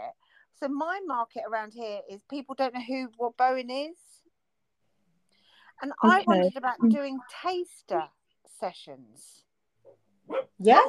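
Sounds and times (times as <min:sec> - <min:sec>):
speech: 0:00.6 - 0:04.2, 0:05.8 - 0:10.8
dog barking: 0:10.3 - 0:10.6.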